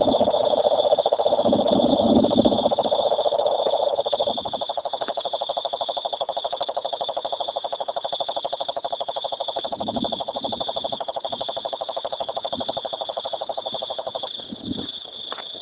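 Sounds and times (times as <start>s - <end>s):
cane toad, Rhinella marina, giving a long pulsed trill: 0.0s - 15.6s.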